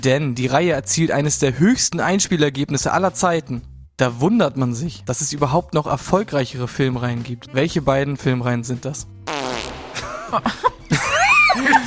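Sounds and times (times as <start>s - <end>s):
speech: 0.0s - 9.4s, 10.3s - 11.0s, 11.6s - 11.8s
loud fart: 9.3s - 10.1s
laughter: 10.0s - 11.8s.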